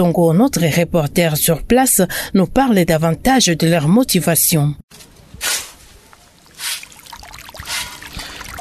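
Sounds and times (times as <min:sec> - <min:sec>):
speech: 0:00.0 - 0:05.7
students scooping and lifting wet sand: 0:05.3 - 0:08.6
flowing water of a river: 0:06.0 - 0:08.6.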